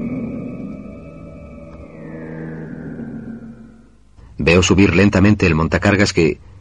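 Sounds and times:
shrill shift-change siren in a mine: 0:00.0 - 0:04.1
low continuous rumble of heavy machinery: 0:00.0 - 0:04.4
speech: 0:04.4 - 0:06.5.

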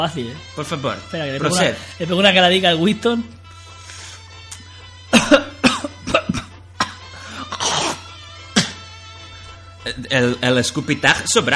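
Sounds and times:
speech: 0:00.0 - 0:03.4, 0:10.0 - 0:11.5
throaty throat clearing: 0:05.1 - 0:08.8
person coughing harshly on request: 0:05.1 - 0:08.9.

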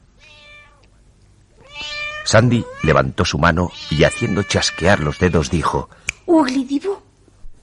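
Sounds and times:
white cat meowing: 0:00.2 - 0:00.8, 0:01.6 - 0:03.1, 0:03.7 - 0:05.6
speech: 0:02.3 - 0:07.1.

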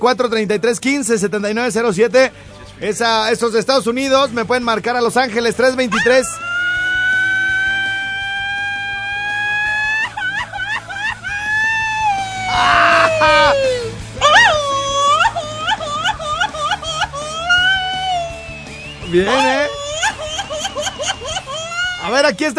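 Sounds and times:
speech: 0:00.0 - 0:06.5, 0:22.1 - 0:22.5
man letting out a long high-pitched yell: 0:05.9 - 0:06.5, 0:12.4 - 0:14.4, 0:19.2 - 0:19.8
laughter: 0:05.9 - 0:22.2.

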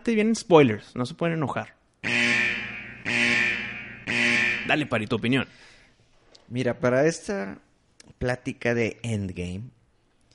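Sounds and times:
speech: 0:00.0 - 0:01.8, 0:04.7 - 0:05.7, 0:06.5 - 0:09.8
robotic droid-style alarm buzzing: 0:02.0 - 0:05.0.

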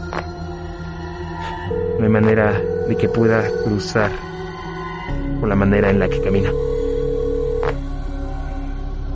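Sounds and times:
low drone: 0:00.0 - 0:09.1
electronic mobile phone ringing tone: 0:01.7 - 0:04.0, 0:06.0 - 0:07.8
speech: 0:02.0 - 0:04.4, 0:05.4 - 0:06.8.

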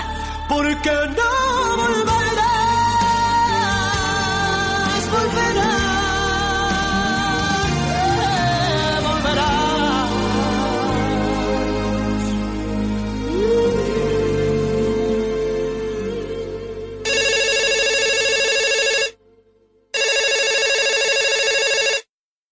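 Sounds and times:
music: 0:00.0 - 0:20.4
speech: 0:00.5 - 0:02.1
telephone ringing for an incoming call: 0:17.1 - 0:19.2, 0:20.0 - 0:22.1.

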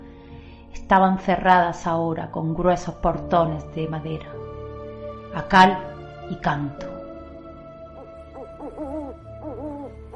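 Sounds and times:
speech: 0:00.9 - 0:04.5, 0:05.3 - 0:06.9
owl hooting in wavering rising-and-falling calls: 0:07.9 - 0:10.1.

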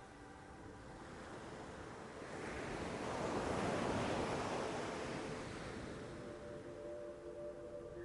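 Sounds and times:
ocean waves breaking on sandy beach: 0:00.0 - 0:08.0.

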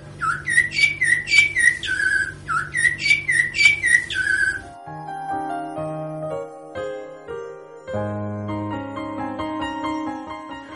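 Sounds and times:
blackbird singing in a tree: 0:00.0 - 0:04.8
gentle melodic music: 0:03.0 - 0:10.7.

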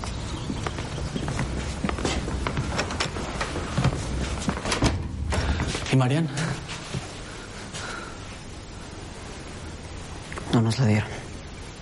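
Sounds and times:
two people's footsteps on a hard floor: 0:00.0 - 0:07.2
door opening: 0:02.4 - 0:06.0
speech: 0:06.0 - 0:06.6, 0:10.6 - 0:11.2.

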